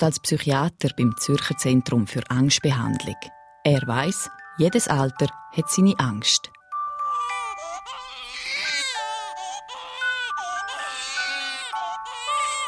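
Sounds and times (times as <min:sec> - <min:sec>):
speech: 0:00.0 - 0:06.6
baby crying loudly: 0:06.9 - 0:12.6.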